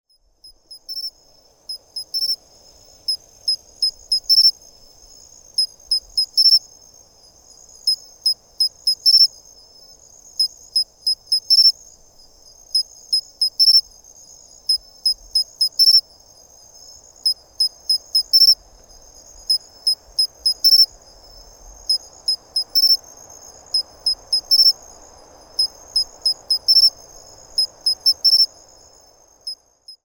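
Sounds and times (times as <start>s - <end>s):
matsumushi cricket call: 0.1s - 30.0s.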